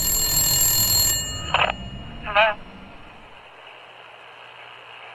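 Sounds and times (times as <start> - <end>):
faint steady hum: 0.0 - 3.6
telephone ringing with warbling electronic bursts: 0.0 - 3.6.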